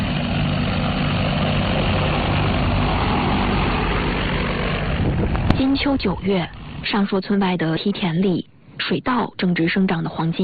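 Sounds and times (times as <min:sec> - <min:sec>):
agricultural crop-protection drone propellers buzzing while spraying over rice terraces in China: 0:00.0 - 0:07.3
speech: 0:05.8 - 0:10.4.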